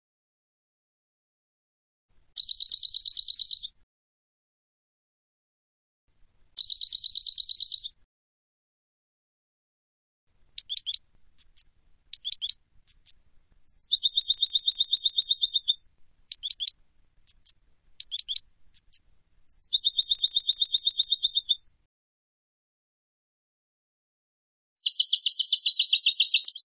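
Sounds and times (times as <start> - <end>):
Carduelis carduelis European goldfinch trilling: 2.4 - 3.7, 6.6 - 8.0, 10.6 - 21.7, 24.8 - 26.6.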